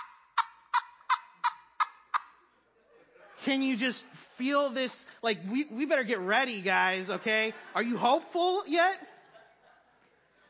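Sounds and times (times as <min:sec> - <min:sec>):
turkey call device imitating a gobble: 0:00.0 - 0:02.5
laughter: 0:02.3 - 0:03.8, 0:06.8 - 0:10.4
speech: 0:03.4 - 0:09.1.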